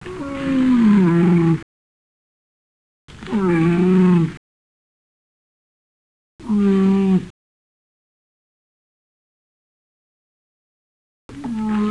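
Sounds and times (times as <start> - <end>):
camel: 0.0 - 1.7, 3.1 - 4.4, 6.4 - 7.3, 11.3 - 11.8.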